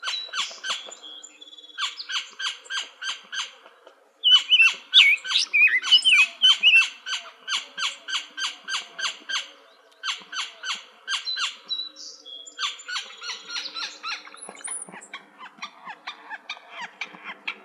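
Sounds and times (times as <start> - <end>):
Gila woodpecker harsh calls in Arizona: 1.7 - 3.6, 4.2 - 11.9, 12.5 - 17.6
bird warbling whistled notes: 4.2 - 6.9.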